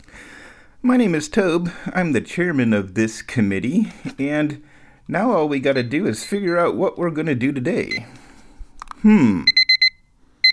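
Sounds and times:
speech: 0.8 - 8.2, 9.0 - 9.6
electronic alarm clock beeping: 5.6 - 6.9, 9.4 - 10.5.

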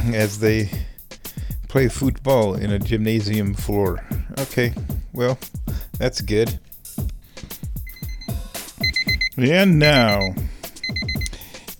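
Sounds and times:
speech: 0.0 - 0.9, 1.7 - 6.6, 9.4 - 10.4
heavy rhythmic thuds and bumps: 0.0 - 11.3
short high electronic beeps: 7.9 - 11.3.

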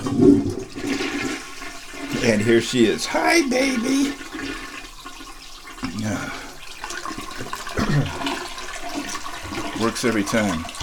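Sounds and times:
toilet flushing: 0.0 - 10.8
speech: 2.2 - 4.3, 10.0 - 10.8.

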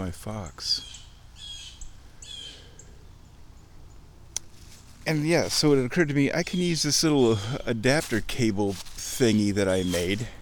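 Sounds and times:
low steady rumble: 0.0 - 9.0
speech: 0.1 - 0.9, 5.1 - 10.4
faint bird chirps: 0.6 - 4.2
harsh raspy bird squawks outdoors: 0.8 - 3.0.

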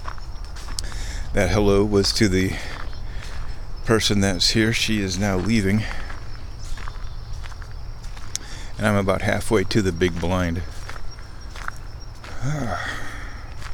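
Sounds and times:
footsteps crunching through dry leaves on a leaf-covered path: 0.0 - 13.7
man speaking softly: 1.3 - 2.8, 3.8 - 6.2, 8.4 - 10.8
speech: 1.4 - 2.7, 3.9 - 6.0, 8.8 - 10.7, 12.4 - 13.0.

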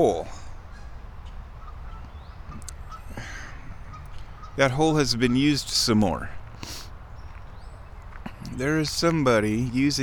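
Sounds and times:
speech: 0.0 - 0.4, 4.6 - 6.4, 8.6 - 10.0
bird calling outdoors: 0.0 - 10.0
steady low rumble of wind: 0.0 - 10.0.

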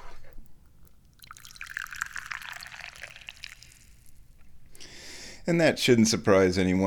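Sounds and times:
tea pouring into a cup: 1.1 - 4.3
speech: 5.5 - 6.8.

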